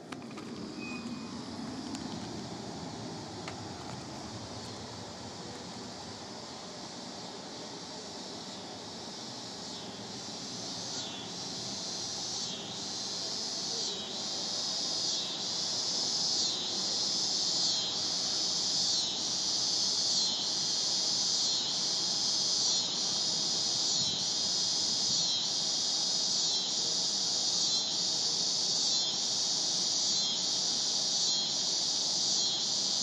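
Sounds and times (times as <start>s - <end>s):
cicadas buzzing: 0.0s - 33.0s.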